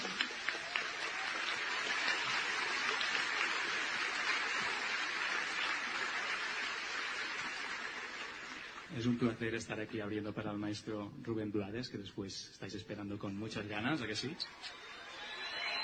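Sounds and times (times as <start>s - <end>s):
large live audience applauding at a jazz festival in Vitoria: 0.0s - 8.9s, 14.5s - 15.8s
speech: 9.0s - 14.8s.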